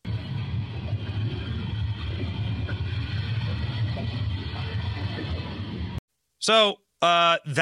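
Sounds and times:
burning train rumbling through a small town in Ohio: 0.1s - 6.0s
speech: 6.4s - 7.6s.

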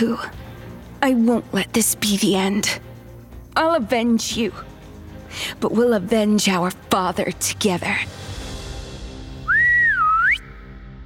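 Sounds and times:
speech: 0.0s - 0.4s, 1.0s - 2.9s, 3.6s - 4.7s, 5.3s - 8.3s
woman whistling to call animals: 9.5s - 10.6s.

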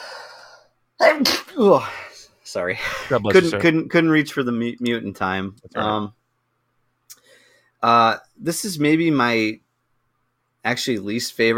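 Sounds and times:
person sneezing: 1.0s - 2.0s
speech: 1.2s - 6.2s, 7.8s - 9.6s, 10.6s - 11.5s.

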